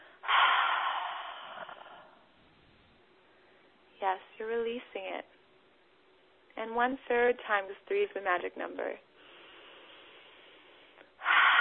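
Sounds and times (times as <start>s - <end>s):
deep breath in through nose and out through mouth during a breathing exercise: 0.0s - 2.4s, 9.2s - 11.5s
speech: 4.0s - 5.4s, 6.6s - 9.1s.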